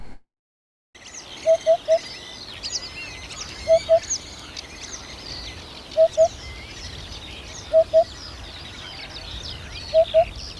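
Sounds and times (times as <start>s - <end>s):
birdsong: 1.0s - 10.5s
Eurasian hoopoe calling: 1.4s - 2.1s, 3.4s - 4.2s, 6.0s - 6.4s, 7.6s - 8.2s, 8.8s - 10.4s.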